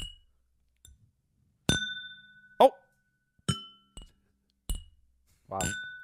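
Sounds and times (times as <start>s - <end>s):
glasses clinking together in a toast: 1.7s - 6.0s
speech: 5.5s - 5.8s.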